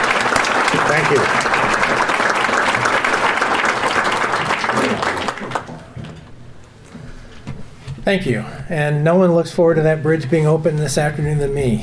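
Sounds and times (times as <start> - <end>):
crowd applauding a finished bridge project: 0.0 - 6.0
speech: 0.9 - 2.1, 8.1 - 11.8.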